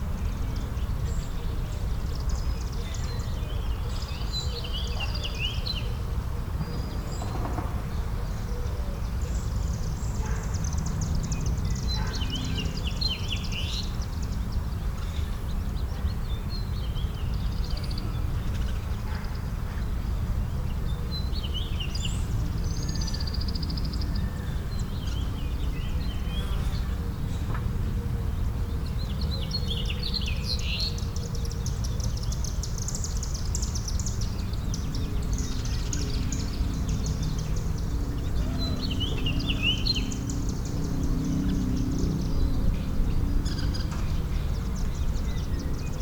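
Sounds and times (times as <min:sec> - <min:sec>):
suburban traffic: 0:00.0 - 0:46.0
suburban daytime birds singing: 0:00.1 - 0:46.0.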